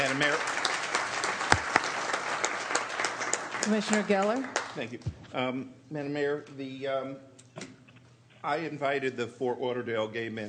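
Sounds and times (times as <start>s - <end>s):
audience applause: 0.0s - 5.0s
speech: 0.1s - 0.6s, 3.6s - 7.7s, 8.4s - 10.4s.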